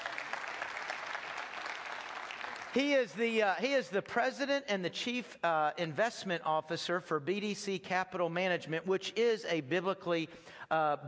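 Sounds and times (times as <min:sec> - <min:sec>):
audience applause: 0:00.0 - 0:03.1
speech: 0:02.8 - 0:11.0.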